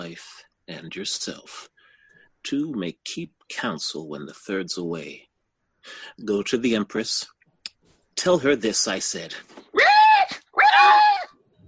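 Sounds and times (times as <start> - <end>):
speech: 0.1 - 1.7, 2.4 - 7.4, 8.2 - 9.9
shrill squealing dying screams: 9.7 - 11.4.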